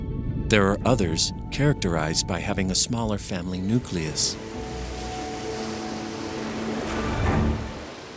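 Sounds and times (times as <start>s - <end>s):
speech: 0.5s - 4.7s
ocean waves crashing against a cliff: 3.6s - 8.1s.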